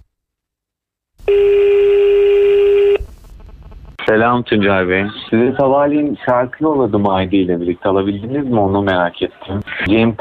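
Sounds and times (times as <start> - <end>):
speech: 1.3 - 1.6, 4.1 - 10.2
steady telephone dialing tone before a phone call: 1.3 - 3.0.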